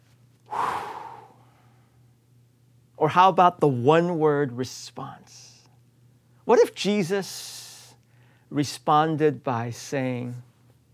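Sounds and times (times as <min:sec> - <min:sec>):
faint low hum: 0:00.0 - 0:10.9
voice imitating exasperated heavy breathing: 0:00.5 - 0:02.0
speech: 0:03.0 - 0:05.5, 0:06.5 - 0:07.6, 0:08.5 - 0:10.5.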